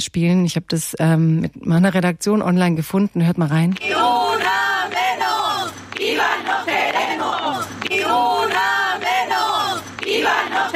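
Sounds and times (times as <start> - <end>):
speech: 0.2 - 5.3
women chanting in unison at a night-time street protest in an old town: 3.8 - 10.7.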